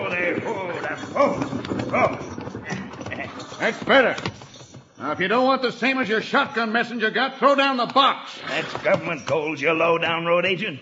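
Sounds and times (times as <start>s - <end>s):
horses' hooves clattering as a stagecoach halts: 0.0s - 5.9s
speech: 0.9s - 2.8s, 3.6s - 4.4s, 5.0s - 10.8s.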